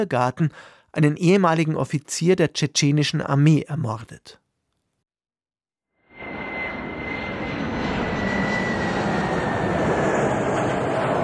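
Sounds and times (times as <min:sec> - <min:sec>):
speech: 0:00.0 - 0:04.4
jet airplane engine roar during landing: 0:06.0 - 0:11.2
jet airplane turbine whine: 0:06.0 - 0:11.2.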